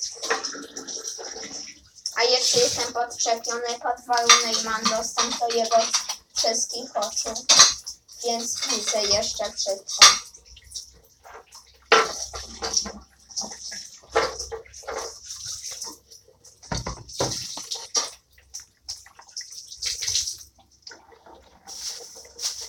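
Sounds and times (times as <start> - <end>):
scrubbing while rinsing and washing: 0.0 - 22.6
water running from a tap: 0.0 - 22.6
speech: 2.2 - 10.3.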